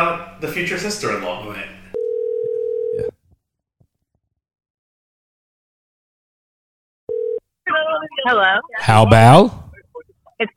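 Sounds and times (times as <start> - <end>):
speech: 0.4 - 1.8, 8.2 - 9.6, 10.4 - 10.5
electronic ringback tone from an outgoing phone call: 2.0 - 3.1, 7.1 - 7.4.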